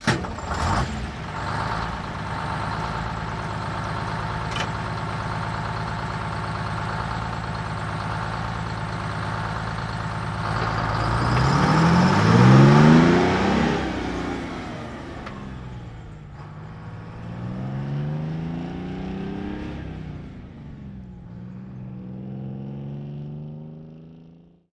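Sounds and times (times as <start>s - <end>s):
1948 diesel truck starting and idling then driving away fast: 0.0s - 24.6s.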